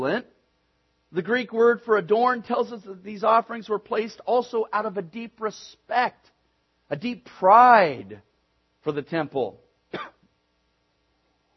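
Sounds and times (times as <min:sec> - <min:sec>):
speech: 0:00.0 - 0:00.3, 0:01.1 - 0:06.3, 0:06.9 - 0:10.2
person coughing: 0:09.9 - 0:10.3
throat clearing: 0:09.9 - 0:10.3.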